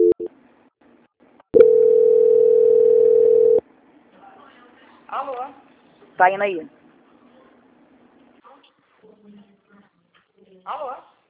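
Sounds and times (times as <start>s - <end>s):
telephone line beeps during a call transfer: 0.0s - 0.3s, 1.6s - 3.6s
speech: 6.2s - 6.8s.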